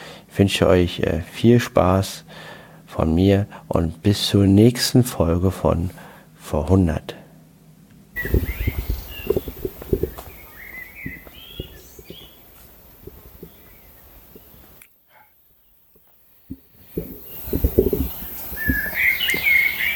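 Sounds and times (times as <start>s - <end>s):
speech: 0.4s - 7.2s, 8.2s - 8.6s
thumps: 8.2s - 12.4s, 16.0s - 19.0s
bird chirps and calls in woodland: 8.2s - 19.9s
low rustling: 8.2s - 19.9s.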